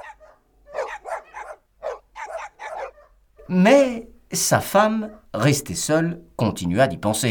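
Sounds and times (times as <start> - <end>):
dogs barking sharply: 0.0 - 3.5
speech: 3.5 - 7.2.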